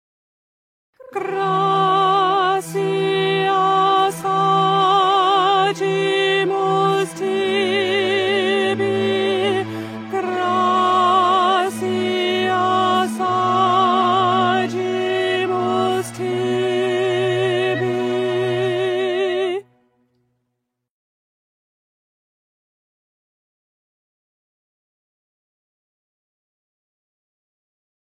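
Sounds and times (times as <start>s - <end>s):
contralto voices: 1.0s - 19.7s.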